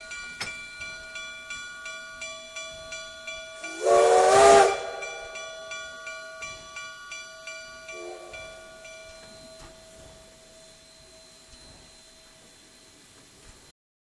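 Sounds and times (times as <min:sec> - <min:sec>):
steam locomotive bell: 0:00.0 - 0:13.7
steam locomotive whistle: 0:03.6 - 0:05.5, 0:07.9 - 0:08.6.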